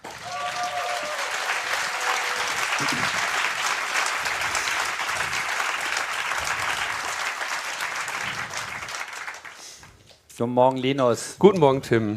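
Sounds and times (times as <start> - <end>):
faint cheers and whistles: 0.0 - 3.2
large audience applauding: 0.0 - 9.9
speech: 2.8 - 3.1, 10.4 - 12.1.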